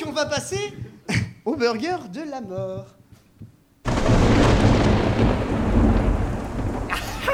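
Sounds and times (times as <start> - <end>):
speech: 0.1 - 0.8, 1.5 - 3.5
deep rolling thunder: 3.9 - 7.3
heavy rain: 3.9 - 7.3.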